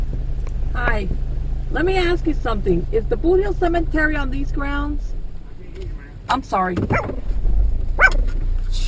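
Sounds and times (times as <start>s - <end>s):
steady low rumble of noise: 0.0s - 8.8s
speech: 0.8s - 5.2s, 5.8s - 7.3s
small dog giving a sharp high-pitched bark: 6.9s - 7.2s, 8.0s - 8.3s.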